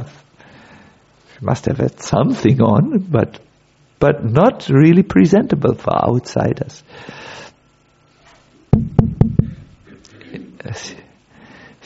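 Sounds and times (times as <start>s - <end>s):
speech: 0.0s - 0.3s, 1.4s - 7.4s, 10.8s - 11.0s
knocking on a door: 8.7s - 9.7s.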